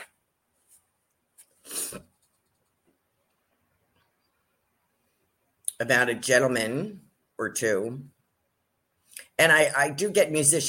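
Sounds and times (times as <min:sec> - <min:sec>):
person sniffing: 0:01.5 - 0:02.1
person blowing their nose: 0:01.6 - 0:02.1
speech: 0:01.9 - 0:02.1, 0:05.8 - 0:08.2, 0:09.4 - 0:10.6.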